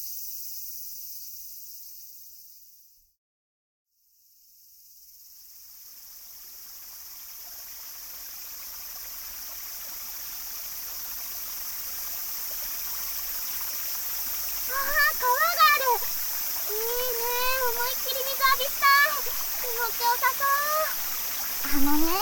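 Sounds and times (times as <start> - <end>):
river flowing in the countryside: 6.6 - 22.1
children talking: 14.7 - 22.1.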